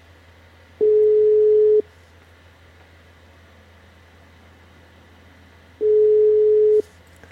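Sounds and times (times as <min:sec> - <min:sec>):
faint constant low hum: 0:00.0 - 0:07.3
telephone ringback tone while a call is being placed: 0:00.8 - 0:01.8, 0:05.8 - 0:06.8.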